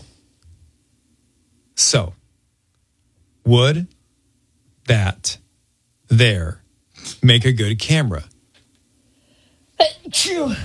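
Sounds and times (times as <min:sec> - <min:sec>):
speech: 0:01.8 - 0:02.2, 0:03.4 - 0:04.0, 0:04.9 - 0:05.4, 0:06.1 - 0:08.3, 0:09.8 - 0:10.6
allergic or ill person sneezing: 0:09.8 - 0:10.6.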